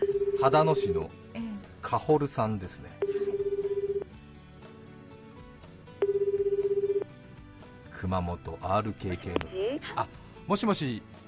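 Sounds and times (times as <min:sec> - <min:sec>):
telephone ringback tone of an outgoing call: 0:00.0 - 0:01.0, 0:03.0 - 0:04.2, 0:06.0 - 0:07.1
faint music: 0:00.0 - 0:11.2
speech: 0:00.4 - 0:01.2, 0:01.8 - 0:03.0, 0:08.0 - 0:11.2.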